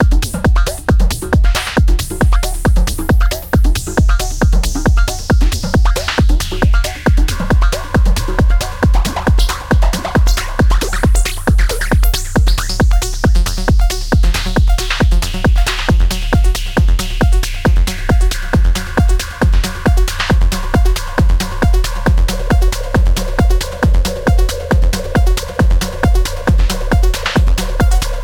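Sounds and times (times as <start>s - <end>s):
multitimbral techno synthesizer parts: 0.0s - 28.2s.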